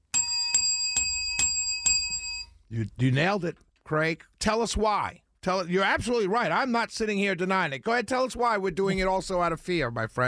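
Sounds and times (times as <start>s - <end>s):
bell ringing: 0.0s - 2.6s
speech: 2.7s - 10.2s.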